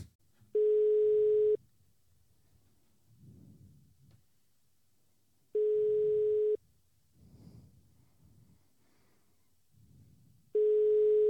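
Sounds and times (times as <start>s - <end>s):
telephone ringback tone of an unanswered call: 0.6s - 1.6s, 5.6s - 6.6s, 10.6s - 11.2s.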